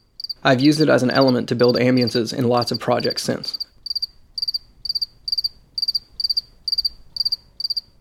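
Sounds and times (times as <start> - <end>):
single cricket chirping: 0.0 - 0.4, 1.1 - 7.9
speech: 0.4 - 3.7.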